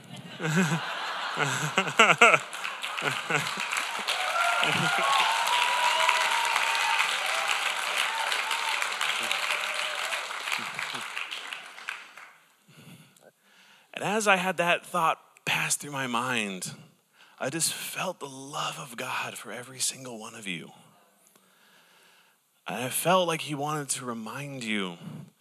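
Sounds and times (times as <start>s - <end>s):
scattered laughter: 0.0s - 6.2s, 10.5s - 11.2s
congregation applause: 0.0s - 12.4s
speech: 0.4s - 5.4s, 14.0s - 16.8s, 17.4s - 20.8s, 22.7s - 25.3s.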